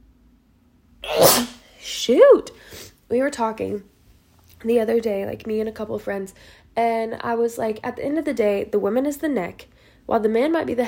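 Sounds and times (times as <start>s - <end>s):
person sneezing: 1.0s - 2.0s
speech: 1.4s - 3.9s, 4.6s - 10.8s.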